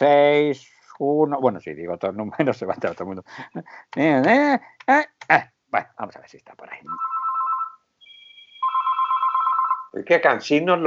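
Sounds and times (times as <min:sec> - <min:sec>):
speech: 0:00.0 - 0:07.1, 0:10.0 - 0:10.8
electronic telephone ring tone during an outgoing call: 0:06.9 - 0:10.0.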